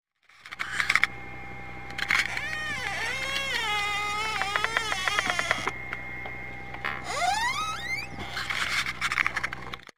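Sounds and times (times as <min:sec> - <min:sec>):
chair creaking: 0:01.9 - 0:05.8, 0:06.8 - 0:09.9.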